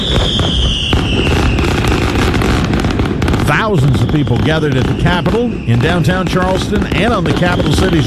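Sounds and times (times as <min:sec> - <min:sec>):
high whistle gliding downward: 0:00.0 - 0:02.0, 0:03.8 - 0:06.6
fireworks display booming: 0:00.0 - 0:08.0
speech: 0:03.7 - 0:08.0.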